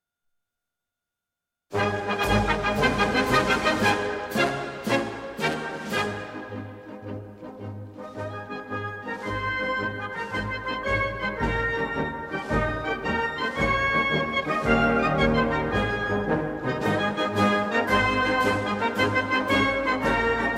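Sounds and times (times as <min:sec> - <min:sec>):
wind band playing: 0:01.7 - 0:20.5.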